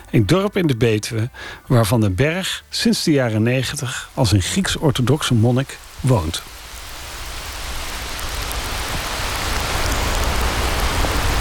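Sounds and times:
speech: 0.1s - 6.6s
rain falling in Neerijnen village in the Betuwe: 3.1s - 11.3s.

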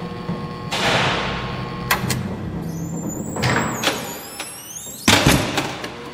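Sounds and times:
heavy metal security gates slamming shut: 0.7s - 6.0s
high metallic squeal of sliding gates: 2.6s - 5.3s.

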